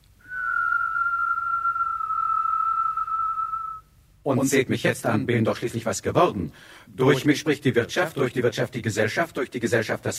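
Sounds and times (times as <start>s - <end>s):
person whistling one long steady note: 0.2s - 3.9s
speech: 4.2s - 10.1s.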